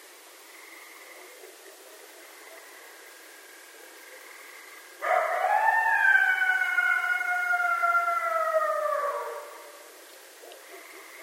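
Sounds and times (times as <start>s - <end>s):
coyote howling: 5.0s - 11.2s.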